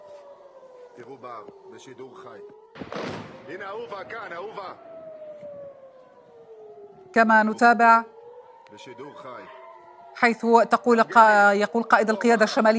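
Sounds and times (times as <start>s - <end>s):
air raid warning siren wailing: 0.0s - 12.7s
speech: 1.0s - 5.6s, 7.1s - 9.6s, 10.2s - 12.7s
heavy thud: 2.8s - 3.8s.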